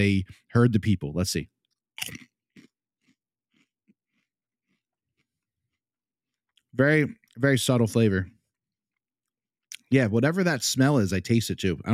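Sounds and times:
speech: 0.0 - 2.3, 6.8 - 8.4, 9.9 - 11.9
ridged potato chips being chewed: 2.0 - 4.8.

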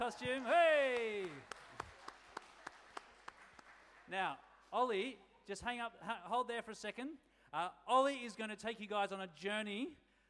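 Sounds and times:
speech: 0.0 - 1.6, 4.1 - 10.0
group applauding with faint hand claps: 0.0 - 4.1.

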